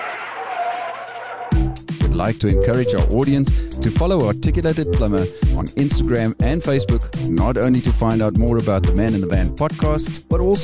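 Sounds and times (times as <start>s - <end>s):
car brakes screeching to a stop: 0.0s - 1.6s
speech: 1.8s - 10.6s.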